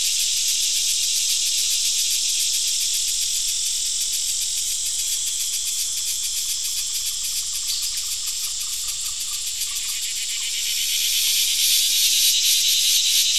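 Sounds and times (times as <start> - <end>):
chorus of several crickets chirping: 0.0 - 13.3.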